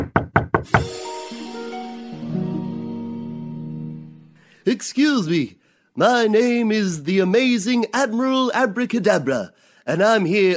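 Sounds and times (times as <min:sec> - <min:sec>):
loud quick knocks on a door: 0:00.0 - 0:00.9
sustained musical chord: 0:00.8 - 0:04.6
speech: 0:04.7 - 0:10.5.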